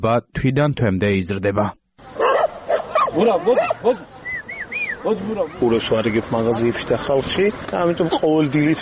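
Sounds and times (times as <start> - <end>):
speech: 0.0 - 2.2, 3.1 - 4.2, 5.0 - 8.7
stray dogs at a mountain pass barking and yelping: 2.1 - 6.8.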